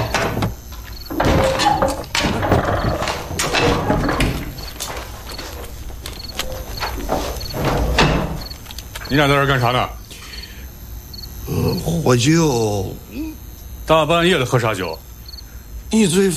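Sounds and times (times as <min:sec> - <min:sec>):
wooden thumps and knocks: 0:00.0 - 0:09.0
door being opened: 0:00.0 - 0:09.5
speech: 0:09.1 - 0:10.0, 0:11.7 - 0:13.0, 0:13.9 - 0:15.0, 0:15.9 - 0:16.3.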